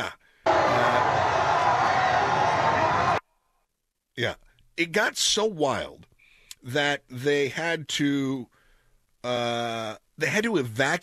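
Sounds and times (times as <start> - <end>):
large crowd at a victory parade in Buenos Aires gasping ooh: 0.5 - 3.2
speech: 4.2 - 8.6, 9.2 - 11.0.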